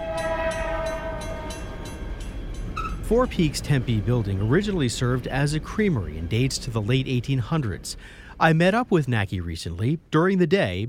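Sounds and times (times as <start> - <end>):
train rumbling: 0.0 - 10.2
train wheels clacking: 0.2 - 7.9
speech: 3.1 - 10.8.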